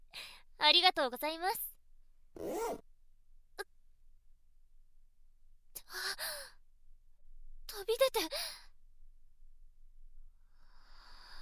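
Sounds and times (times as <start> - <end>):
speech: 0.7 - 1.7, 2.4 - 2.9, 7.8 - 8.6
trouser zipper being pulled down: 2.4 - 2.8.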